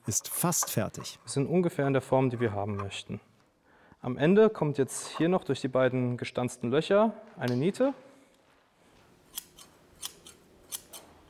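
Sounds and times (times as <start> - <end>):
speech: 0.1 - 3.3, 4.0 - 8.1
newly forged riveted metal shears snipping at a scythe smithy: 9.3 - 11.1.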